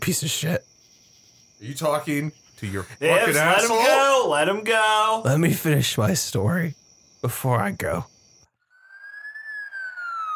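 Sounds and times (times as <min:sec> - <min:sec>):
speech: 0:00.0 - 0:00.8, 0:01.6 - 0:08.1
emergency vehicle siren wailing: 0:08.8 - 0:10.3.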